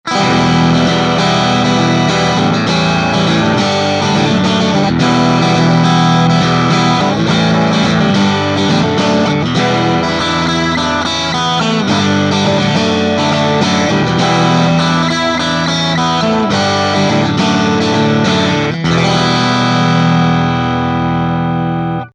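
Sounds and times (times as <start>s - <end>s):
crunch guitar tone on middle and bridge pickups: 0.0s - 22.1s.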